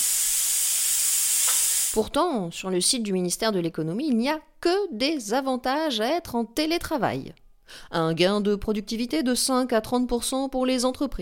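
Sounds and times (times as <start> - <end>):
pressure cooker steam jet hissing: 0.0 - 2.0
speech: 1.9 - 11.1.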